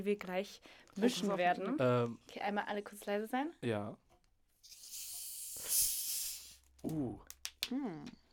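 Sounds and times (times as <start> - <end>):
speech: 0.0 - 4.0, 6.8 - 8.2
gas hissing from an opened soda bottle: 4.6 - 6.7.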